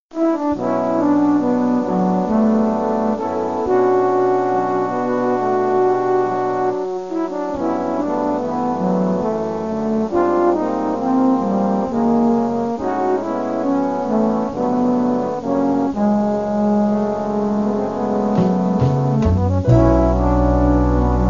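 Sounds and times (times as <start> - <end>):
trombones: 0.1 - 21.2.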